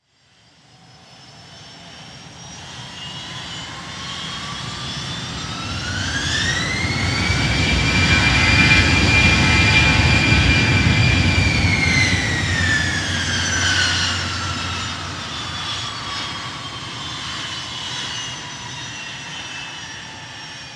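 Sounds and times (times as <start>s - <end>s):
jet airplane idling past on a runway: 0.2s - 20.7s.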